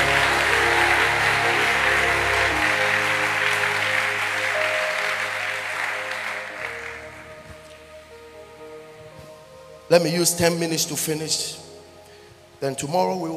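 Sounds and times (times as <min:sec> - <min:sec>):
audience clapping: 0:00.0 - 0:07.6
speech: 0:09.9 - 0:11.7, 0:12.6 - 0:13.3.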